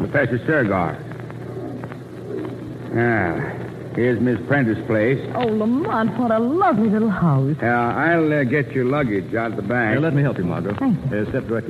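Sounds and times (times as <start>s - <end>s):
steady low hum: 0.0s - 11.6s
speech: 0.1s - 1.1s, 2.9s - 11.6s
screech owl hooting: 1.4s - 4.0s.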